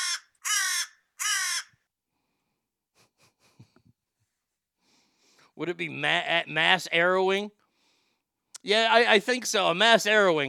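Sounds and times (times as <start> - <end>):
crow cawing: 0.0 - 1.8
speech: 5.6 - 7.6, 8.6 - 10.4.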